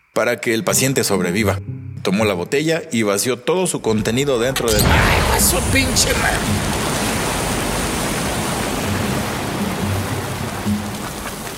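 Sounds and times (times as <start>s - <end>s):
speech: 0.2s - 6.8s
hot water spraying hard from a nozzle: 4.8s - 11.5s.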